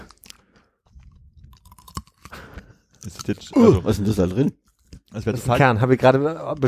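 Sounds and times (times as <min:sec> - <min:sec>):
firm crisp fruit being bitten and chewed: 0:00.0 - 0:03.6
speech: 0:03.1 - 0:04.6, 0:05.2 - 0:06.6.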